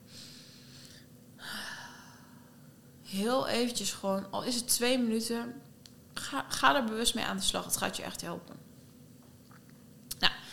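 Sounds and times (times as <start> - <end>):
slow deep breath drawn in and let out: 0.0 - 2.7, 10.4 - 10.5
speech: 3.1 - 5.6, 6.3 - 8.6.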